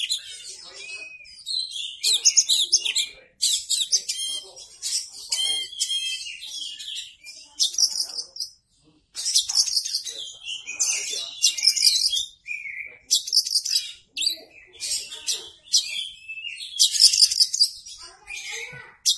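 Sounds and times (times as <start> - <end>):
Oriental magpie-robin singing a varied high-pitched song of chirps, trills and whistles: 0.0 - 8.6, 9.2 - 19.1.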